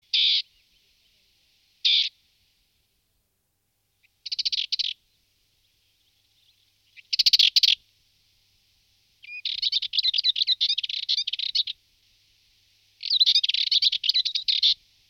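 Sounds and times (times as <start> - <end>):
Dartford warbler singing: 4.0 - 5.0, 5.6 - 7.8, 9.2 - 11.8, 13.0 - 14.8.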